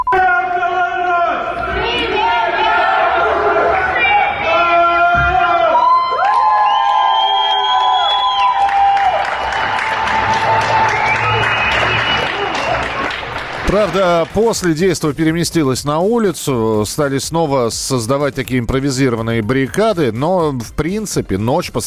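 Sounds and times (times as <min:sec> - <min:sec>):
residents shouting from windows: 0:00.2 - 0:06.6, 0:08.6 - 0:13.3
residents whistling from windows: 0:06.5 - 0:09.6, 0:10.6 - 0:13.0
speech: 0:13.8 - 0:21.8.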